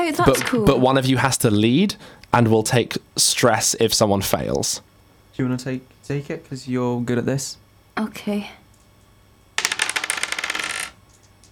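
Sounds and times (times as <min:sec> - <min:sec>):
speech: 0:00.1 - 0:08.6
dice clattering across a hard table: 0:09.6 - 0:11.3.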